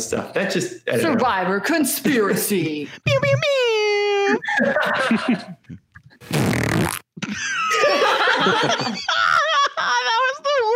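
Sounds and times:
speech: 0.0 - 3.7, 4.3 - 10.0
laughter: 2.9 - 5.8, 7.2 - 10.7
fart sound effect from a soundboard: 6.2 - 7.3.

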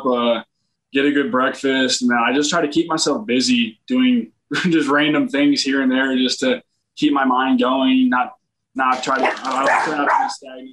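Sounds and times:
speech: 0.0 - 10.7
dog barking and yipping: 9.0 - 10.4.

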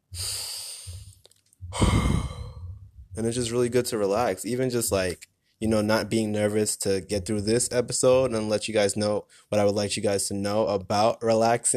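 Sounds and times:
deep yoga-style breath: 0.1 - 2.8
speech: 3.2 - 11.7.

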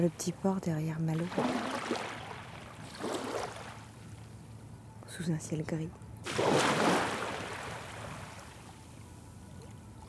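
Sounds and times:
speech: 0.0 - 2.1, 5.2 - 6.9
waves breaking against a jetty: 1.1 - 4.0, 6.2 - 8.9.

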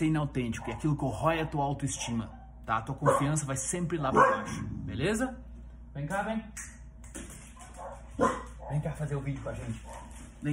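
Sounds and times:
speech: 0.0 - 5.4, 6.0 - 6.8, 8.2 - 10.5
steady low hum: 0.0 - 10.5
dog barking: 0.5 - 1.2, 1.8 - 3.5, 4.1 - 4.7, 7.6 - 9.0, 9.7 - 10.3
dog giving a soft yip: 2.0 - 3.3, 4.1 - 4.6, 7.7 - 8.8.

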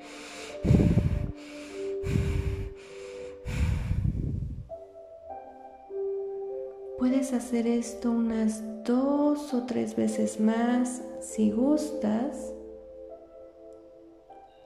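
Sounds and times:
quick forceful breaths in a rapid breathing exercise: 0.0 - 4.7
soft sustained musical tone: 0.0 - 14.6
speech: 7.2 - 12.6.

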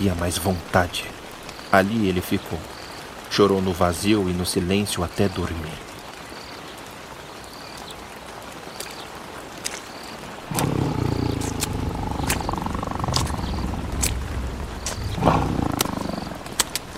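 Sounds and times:
speech: 0.0 - 5.9
white-furred saber-toothed tiger growling: 10.4 - 16.9
saber-toothed tiger sniffing the ground: 10.5 - 16.9
sharp little clicks: 10.5 - 16.9.

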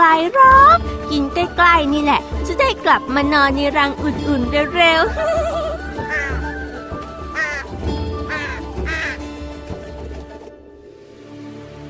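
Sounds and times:
speech: 1.4 - 5.5
crow cawing: 5.8 - 9.2.

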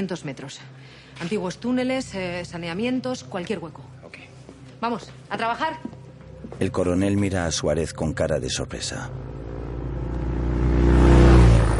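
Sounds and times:
speech: 0.0 - 6.0, 6.6 - 9.3
motorcycle engine approaching at a scrapyard: 8.7 - 11.7.

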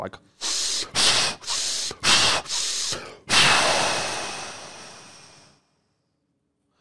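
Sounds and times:
person taking rapid forceful breaths: 0.4 - 5.7.

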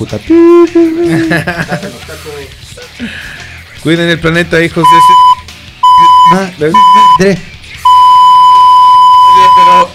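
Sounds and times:
speech: 0.0 - 5.3, 6.3 - 7.5
loud high electronic beep: 0.3 - 1.0, 4.8 - 7.2, 7.8 - 9.9
laughter: 0.9 - 2.2.

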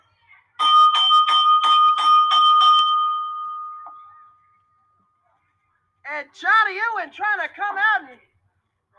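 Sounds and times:
metal wrestling ring bell clanging: 0.6 - 4.1
speech: 6.7 - 8.3.

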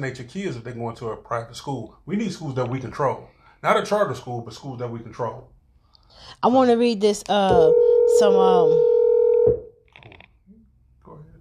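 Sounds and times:
speech: 0.0 - 9.0
loud steady telephone tone: 7.5 - 9.7.

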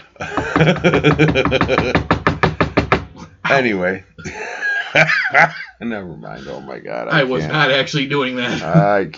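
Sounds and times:
laughter: 0.2 - 2.1, 4.2 - 5.8
speech: 0.2 - 2.2, 3.5 - 9.1
knuckles knocking on a table: 0.2 - 3.1.

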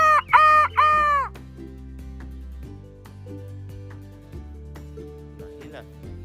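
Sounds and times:
rooster crowing: 0.0 - 1.3.

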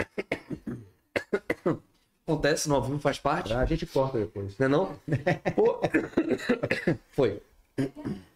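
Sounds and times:
person coughing harshly: 0.0 - 1.8, 5.9 - 7.0, 7.8 - 8.3
speech: 1.7 - 8.2
laughter: 5.1 - 6.7.

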